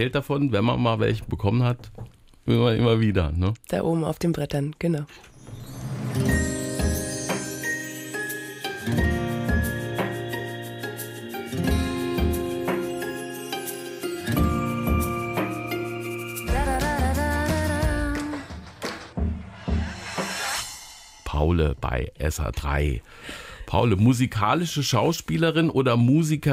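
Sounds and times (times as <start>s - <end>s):
speech: 0.0s - 5.3s, 6.2s - 6.6s, 21.6s - 26.5s
song with steady rhythmic beat and melodic tones: 5.4s - 21.2s.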